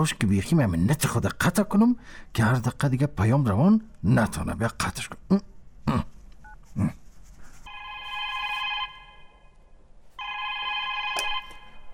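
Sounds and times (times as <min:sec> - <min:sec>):
speech: 0:00.0 - 0:06.1, 0:06.8 - 0:07.0
telephone ringing with an electronic trill: 0:07.7 - 0:09.6, 0:10.2 - 0:11.9.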